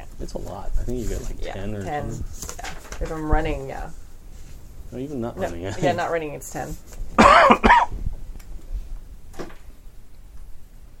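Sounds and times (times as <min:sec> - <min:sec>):
low hum: 0:00.0 - 0:10.9
speech: 0:00.2 - 0:04.0, 0:04.9 - 0:07.6
person coughing: 0:07.2 - 0:07.9.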